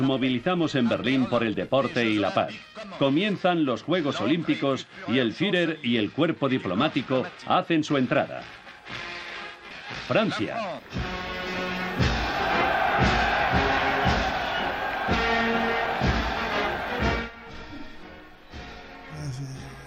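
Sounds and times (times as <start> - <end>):
speech: 0.0 - 9.1, 9.9 - 11.0
huge stadium crowd at the 1936 Olympic Games opening in Berlin cheering and applauding: 10.9 - 18.9
stadium crowd murmur: 11.8 - 17.3.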